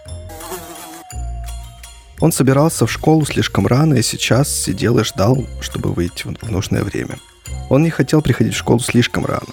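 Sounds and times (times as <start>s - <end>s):
housefly buzzing while flying around a room: 0.0s - 1.2s
speech: 2.2s - 9.5s.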